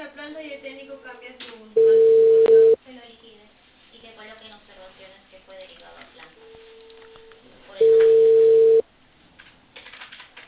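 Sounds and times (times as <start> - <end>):
telephone ringing tone on an unanswered call: 1.8 - 2.8, 7.8 - 8.8.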